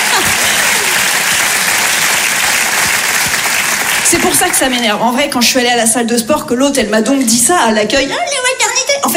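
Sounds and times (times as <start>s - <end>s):
audience applause: 0.0s - 5.0s
speech: 4.1s - 9.1s.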